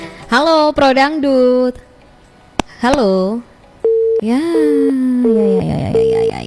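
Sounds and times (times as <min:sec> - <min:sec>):
speech: 0:00.4 - 0:01.8, 0:02.8 - 0:03.5, 0:04.2 - 0:06.4
telephone busy signal after phone-in call disconnected: 0:03.8 - 0:06.4.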